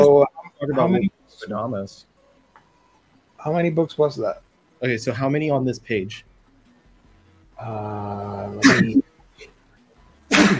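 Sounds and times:
speech: 0:00.2 - 0:02.1, 0:03.4 - 0:06.3, 0:07.6 - 0:09.0
person sneezing with drawn-out voiced build-up: 0:08.5 - 0:09.0, 0:10.3 - 0:10.5.

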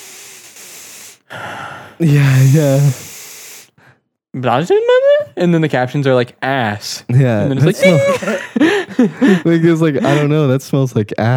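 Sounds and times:
voice imitating a deep sniffing inhale: 0:00.0 - 0:04.0
speech: 0:01.3 - 0:03.0, 0:04.4 - 0:11.3
laughter: 0:07.2 - 0:10.4.

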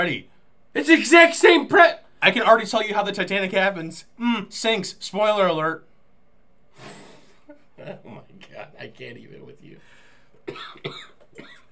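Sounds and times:
speech: 0:00.0 - 0:05.9, 0:07.8 - 0:09.9
person coughing: 0:10.5 - 0:11.6.

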